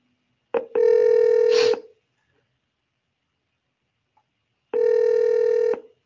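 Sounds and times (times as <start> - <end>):
phone call ringing tone: 0.6 - 1.8, 4.8 - 5.9.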